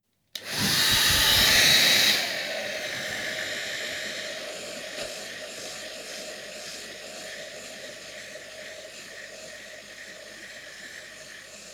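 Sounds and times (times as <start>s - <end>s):
low-power hair dryer running: 0.4s - 9.2s.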